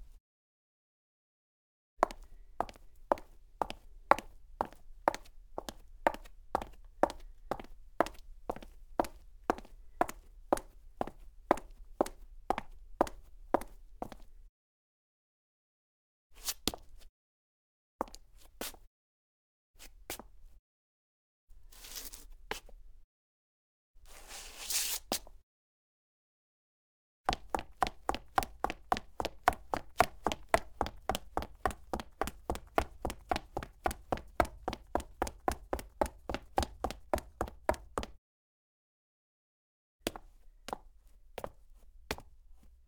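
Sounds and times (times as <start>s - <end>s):
high heels footsteps on clean cement: 2.0s - 14.3s, 27.3s - 38.2s, 40.1s - 42.3s.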